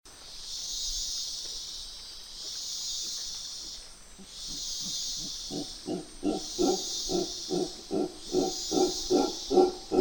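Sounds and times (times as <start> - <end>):
mantled howler in Panama: 4.5 - 9.9.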